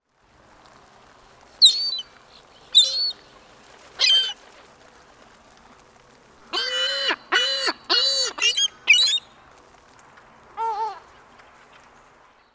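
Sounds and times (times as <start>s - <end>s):
Ring-billed Gull Larus delawarensis calling: 1.6s - 2.1s, 2.7s - 3.2s, 4.0s - 4.4s, 6.5s - 9.2s.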